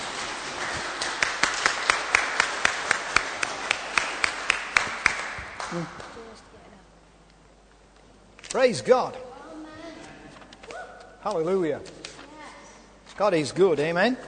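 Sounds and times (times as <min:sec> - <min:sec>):
audience clapping in a steady rhythmic beat: 0:00.0 - 0:06.4
speech: 0:05.7 - 0:06.0, 0:08.6 - 0:09.2, 0:11.2 - 0:12.0, 0:13.2 - 0:14.2.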